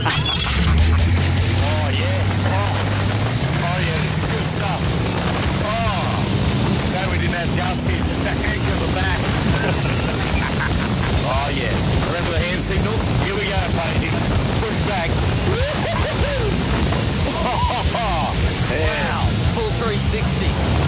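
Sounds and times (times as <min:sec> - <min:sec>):
people shouting and whooping: 0:00.0 - 0:01.3, 0:15.3 - 0:19.3
laughter: 0:00.0 - 0:02.7, 0:09.2 - 0:12.2, 0:15.3 - 0:19.1
jet boat engine droning: 0:00.0 - 0:20.8
rushing wind and water spray: 0:00.8 - 0:20.8.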